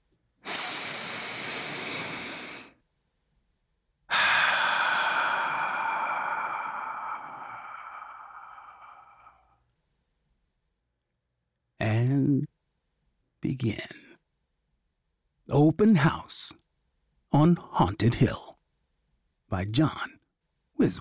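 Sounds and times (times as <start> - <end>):
deep breath in and out: 0.4 - 2.8, 4.1 - 9.7
speech: 13.6 - 14.0, 15.6 - 16.6, 17.3 - 18.5, 19.5 - 20.2, 20.8 - 21.0.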